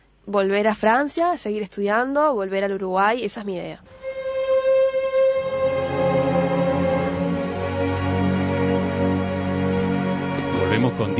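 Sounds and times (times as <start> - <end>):
speech: 0.2 - 4.0, 10.8 - 11.1
orchestral strings playing an adagio: 3.9 - 11.1.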